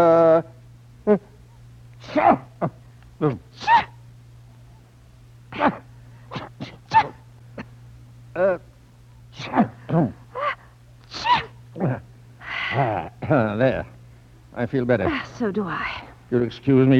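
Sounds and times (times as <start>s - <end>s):
speech: 0.0s - 1.3s, 2.1s - 3.9s, 5.6s - 5.8s, 8.4s - 8.7s, 9.4s - 10.2s, 12.7s - 13.9s, 14.6s - 16.9s
low steady hum: 0.0s - 16.9s
two people sneezing after taking snuff: 2.0s - 4.0s, 5.5s - 7.8s, 9.3s - 12.0s.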